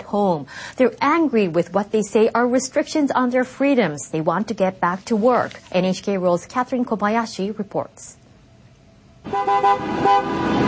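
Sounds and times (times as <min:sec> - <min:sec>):
steady traffic rumble: 0:00.0 - 0:10.6
speech: 0:00.1 - 0:08.2, 0:09.2 - 0:10.6
car horns honking in a Michigan traffic jam protest: 0:09.2 - 0:10.6.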